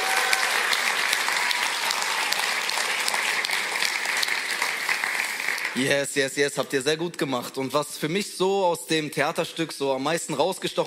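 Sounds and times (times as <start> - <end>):
audience applauding: 0.0 - 6.0
speech: 5.8 - 10.8.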